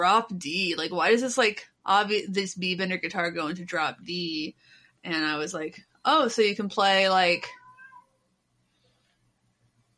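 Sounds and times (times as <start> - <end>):
speech: 0.0 - 7.6
house cat meowing faintly: 7.5 - 8.2.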